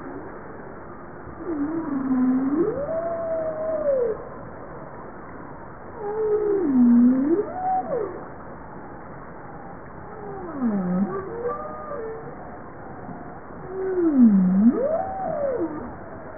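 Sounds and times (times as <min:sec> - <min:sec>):
steady low background hiss: 0:00.0 - 0:16.3
bowhead whale tonal moaning calls: 0:01.4 - 0:04.3, 0:06.0 - 0:08.2, 0:10.1 - 0:16.3.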